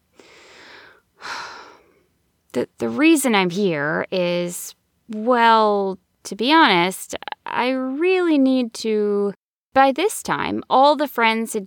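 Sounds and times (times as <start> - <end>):
deep breath drawn and let out: 0.1 - 2.1
speech: 2.6 - 11.6.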